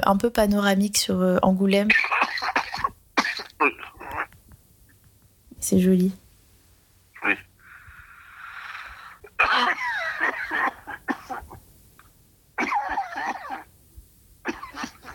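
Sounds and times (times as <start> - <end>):
speech: 0.0 - 2.6, 3.6 - 4.0, 5.6 - 6.2, 7.2 - 7.5, 9.4 - 11.5
heavy coughing: 1.9 - 4.3, 7.2 - 7.5, 9.2 - 11.6, 12.6 - 13.7, 14.4 - 15.1.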